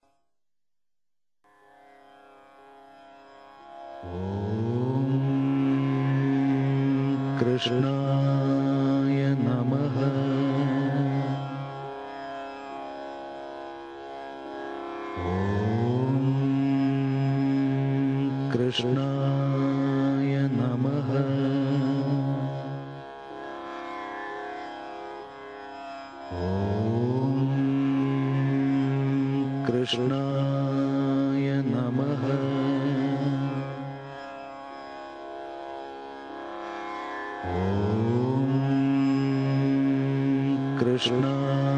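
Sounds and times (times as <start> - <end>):
Hindu devotional chant: 4.0 - 12.2, 15.1 - 24.6, 26.2 - 34.3, 36.6 - 41.7.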